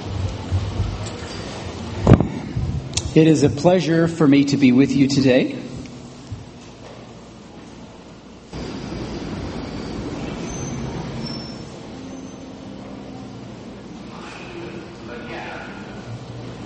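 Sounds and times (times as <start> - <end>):
subway train rumbling at a platform: 0.0 - 16.6
speech: 3.2 - 5.6
high metallic wheel squeals of a subway train: 9.5 - 12.8.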